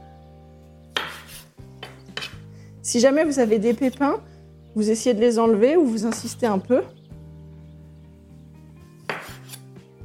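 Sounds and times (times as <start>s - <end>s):
knife cutting orange quarters on a board: 0.9s - 2.4s, 9.0s - 9.8s
speech: 2.8s - 7.0s.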